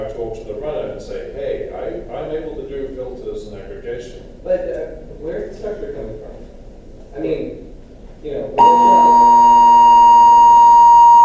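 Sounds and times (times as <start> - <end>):
speech: 1.0 - 6.5
hotel fire alarm system under test sounding a steady electronic tone: 8.6 - 11.2.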